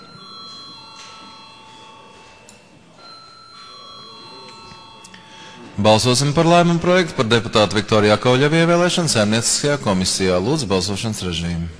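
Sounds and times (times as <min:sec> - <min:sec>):
electric bell ringing in a council session to call a vote: 0:00.0 - 0:10.2
speech: 0:05.8 - 0:11.7.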